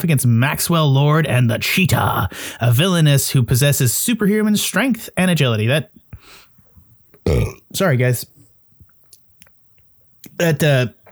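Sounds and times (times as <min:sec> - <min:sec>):
speech: 0:00.0 - 0:06.4, 0:07.3 - 0:08.3, 0:10.4 - 0:11.1
person burping from indigestion: 0:07.2 - 0:07.7, 0:10.4 - 0:11.1
faint mouth noises: 0:10.2 - 0:11.1.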